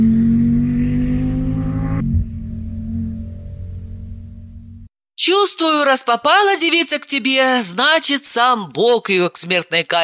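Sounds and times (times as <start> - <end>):
car engine accelerating to overtake: 0.0 - 4.9
speech: 5.5 - 10.0.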